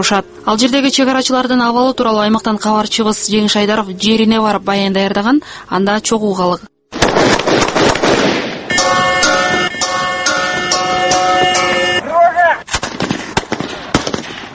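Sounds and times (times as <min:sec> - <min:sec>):
speech: 0:00.0 - 0:06.7
gunfire during a training exercise at a border outpost: 0:06.9 - 0:09.2, 0:12.7 - 0:14.5
droning horn-like tone: 0:08.7 - 0:12.2.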